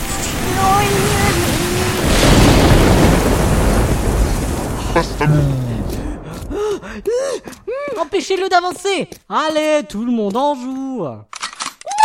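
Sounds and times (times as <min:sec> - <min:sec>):
loud rolling rumble of thunder: 0:00.4 - 0:07.5
speech: 0:05.0 - 0:05.6, 0:06.9 - 0:11.4.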